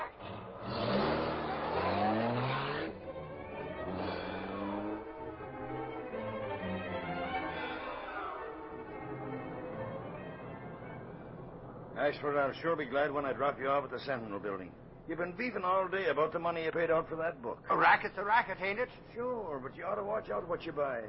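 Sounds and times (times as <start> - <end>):
car engine revving hard as it accelerates and pulls away: 0.0 - 11.4
speech: 12.0 - 21.0.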